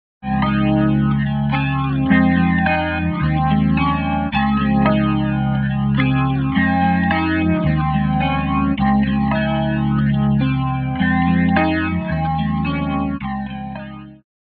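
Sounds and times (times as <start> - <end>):
panning guitar with wet chorus effect: 0.2 - 14.2.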